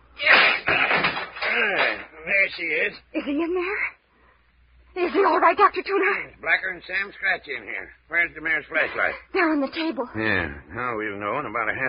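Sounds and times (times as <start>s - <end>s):
locked door forced open by swinging a chair against it: 0.2s - 2.0s
heavy thud and rattle of door giving way: 0.3s - 1.6s
speech: 2.5s - 4.0s, 5.0s - 11.8s.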